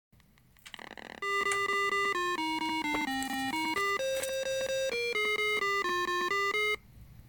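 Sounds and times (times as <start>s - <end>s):
game over sound: 1.1s - 6.8s.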